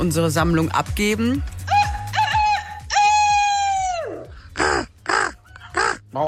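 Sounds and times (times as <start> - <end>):
speech: 0.0 - 1.6
listeners imitating crow-like caws and squawks: 1.7 - 6.1.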